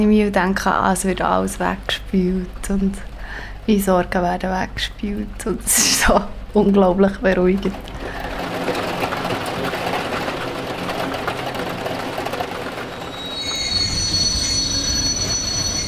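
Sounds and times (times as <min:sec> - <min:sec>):
speech: 0:00.0 - 0:08.0
train rumbling in over grinding rail noise: 0:00.0 - 0:15.8
train wheels squealing as it brakes at a platform: 0:12.4 - 0:15.8.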